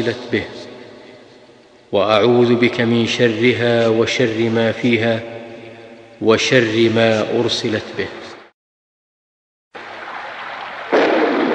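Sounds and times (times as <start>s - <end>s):
speech: 0.0s - 0.7s, 1.9s - 5.3s, 6.2s - 8.2s
noisy rain-like wash: 9.8s - 11.5s
thunder rumbling: 9.8s - 11.5s.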